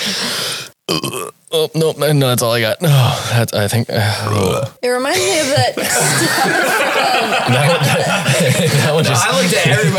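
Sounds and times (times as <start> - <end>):
loud burp: 0.9 - 1.4, 4.3 - 4.8
speech: 0.9 - 9.9
laughter: 5.8 - 9.9.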